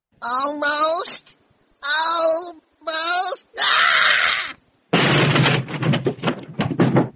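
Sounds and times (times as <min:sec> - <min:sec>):
speech: 0:00.2 - 0:04.3
clattering, rattling thuds: 0:04.9 - 0:07.1
person tumbling off a chair onto the floor: 0:04.9 - 0:07.1.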